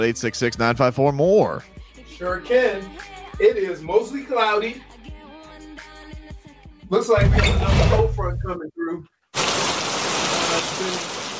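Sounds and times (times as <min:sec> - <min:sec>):
speech: 0:00.0 - 0:05.2, 0:06.9 - 0:09.1, 0:10.6 - 0:11.1
light rain pattering: 0:09.4 - 0:11.3.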